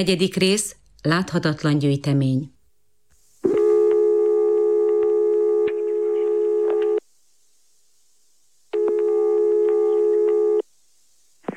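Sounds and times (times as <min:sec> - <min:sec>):
speech: 0:00.0 - 0:02.5
telephone line tone while calling a number: 0:03.4 - 0:07.0, 0:08.8 - 0:10.7.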